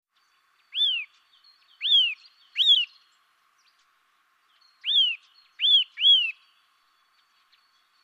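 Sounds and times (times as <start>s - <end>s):
soft bird twittering: 0.1s - 8.0s
Eurasian nuthatch Sitta europaea calling: 0.2s - 3.8s, 4.5s - 8.0s.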